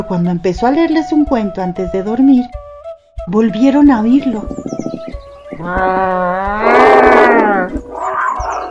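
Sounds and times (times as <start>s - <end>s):
speech: 0.0s - 2.6s, 3.2s - 4.8s, 5.6s - 7.8s
big cat roaring and grunting: 5.6s - 8.6s.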